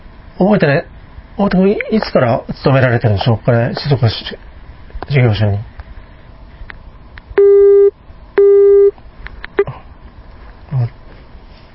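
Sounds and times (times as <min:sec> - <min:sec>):
speech: 0:00.4 - 0:04.5, 0:05.1 - 0:05.7
phone disconnect busy tone after hang-up: 0:07.4 - 0:08.9.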